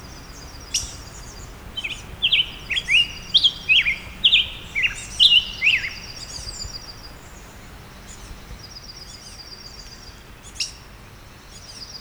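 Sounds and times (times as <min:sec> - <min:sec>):
Black-headed Grosbeak Pheucticus melanocephalus: 0:00.0 - 0:08.6.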